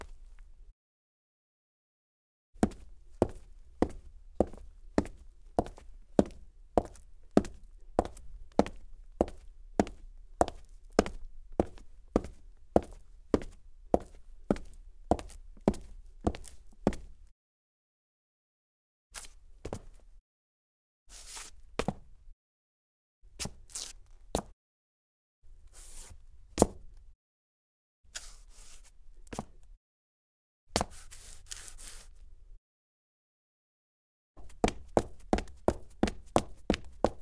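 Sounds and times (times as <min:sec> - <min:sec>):
dress boots footsteps on clean cement: 0:02.6 - 0:17.2, 0:19.7 - 0:20.0, 0:34.4 - 0:37.2.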